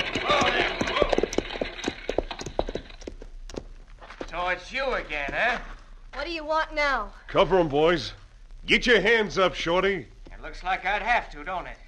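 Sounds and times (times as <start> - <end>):
horses' hooves clopping: 0.0 - 5.8
speech: 4.5 - 11.8.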